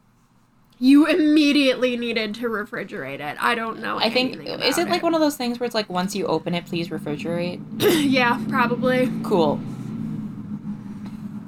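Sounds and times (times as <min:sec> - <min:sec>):
speech: 0:00.8 - 0:09.8
loud car engine rumbling outside: 0:05.9 - 0:11.4.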